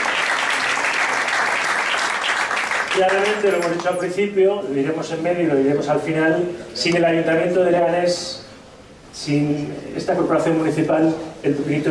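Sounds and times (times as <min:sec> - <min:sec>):
audience applause at a town event: 0:00.0 - 0:03.9
speech: 0:03.0 - 0:08.4, 0:09.2 - 0:11.9.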